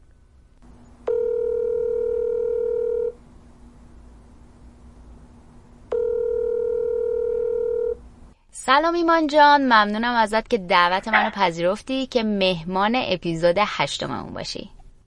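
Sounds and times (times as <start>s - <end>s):
faint constant hum: 0.0s - 15.0s
telephone ringback tone while placing a call: 1.0s - 3.2s, 5.9s - 8.0s
speech: 8.7s - 14.8s.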